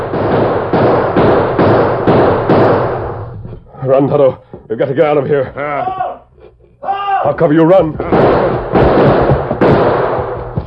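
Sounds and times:
rapid volley of gunshots fired across a street: 0.0 - 3.3, 7.9 - 10.6
speech: 3.9 - 6.0, 7.2 - 9.1.

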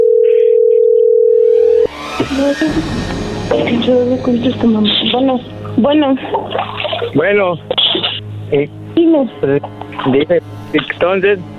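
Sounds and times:
telephone dial tone while someone places a call: 0.0 - 1.8
speech: 2.4 - 7.8, 8.5 - 11.5.

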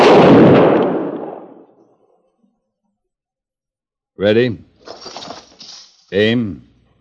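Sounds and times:
rifle volley fired on command: 0.0 - 1.7
speech: 4.2 - 5.1, 6.1 - 6.7.

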